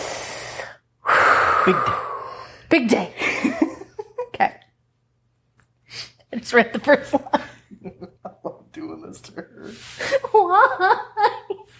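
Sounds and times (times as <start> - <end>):
deep breaths taken in preparation: 0.0 - 3.4
speech: 1.6 - 2.0, 2.7 - 3.7, 6.5 - 8.0, 9.2 - 11.1.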